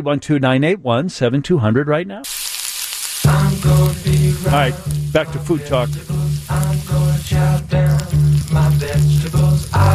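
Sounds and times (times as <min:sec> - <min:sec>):
speech: 0:00.0 - 0:02.4, 0:03.6 - 0:08.0
loud steady sizzling frying: 0:02.2 - 0:09.9.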